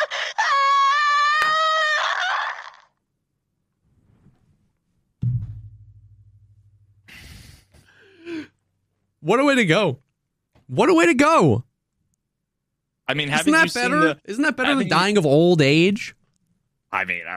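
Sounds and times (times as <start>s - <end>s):
voice imitating a muffled scream over comms: 0.9s - 2.9s
speech: 9.3s - 10.0s, 10.7s - 11.7s, 13.1s - 16.2s, 16.9s - 17.3s.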